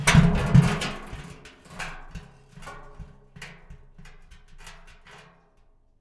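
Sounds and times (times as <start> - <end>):
rusty bucket falling over: 0.0 - 1.4.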